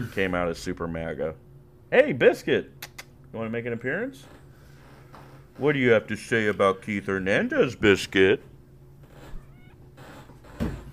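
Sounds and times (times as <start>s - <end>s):
speech: 0.0s - 4.4s, 5.6s - 8.5s
quiet room hum: 0.0s - 10.9s
cat meowing softly: 9.2s - 10.0s.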